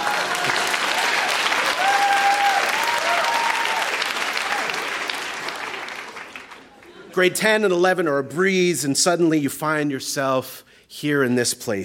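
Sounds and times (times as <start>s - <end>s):
large audience applause: 0.0s - 7.0s
whistle-like cheer: 1.7s - 4.0s
speech: 7.2s - 11.8s.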